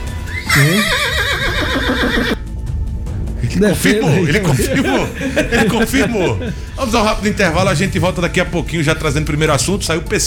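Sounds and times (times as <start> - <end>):
horse whinnying: 0.2 - 2.4
laughter: 0.3 - 2.4, 3.5 - 7.7
speech: 0.6 - 1.3, 3.6 - 10.2.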